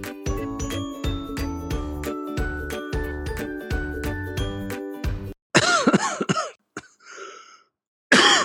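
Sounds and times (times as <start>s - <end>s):
tinkling chime-like jingle: 0.2s - 5.0s
harsh coughing: 5.6s - 7.0s, 8.1s - 8.4s.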